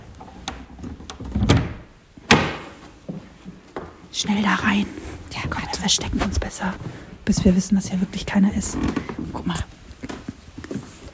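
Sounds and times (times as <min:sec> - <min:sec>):
door behind a curtain opened with rattling creaking handle and latch: 0:00.2 - 0:02.5
speech: 0:04.2 - 0:09.7.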